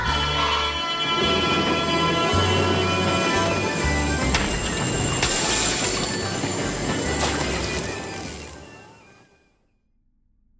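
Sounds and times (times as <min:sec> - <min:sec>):
train wheels metallic squealing: 0:00.1 - 0:08.4
loud oncoming train wheels rumbling: 0:01.0 - 0:09.1.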